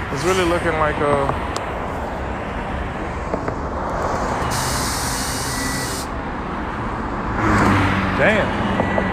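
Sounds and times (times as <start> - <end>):
speech: 0.1 - 1.5, 8.2 - 8.6
cars speeding past on a road: 1.4 - 9.1
sharp hissing burst: 4.2 - 6.1.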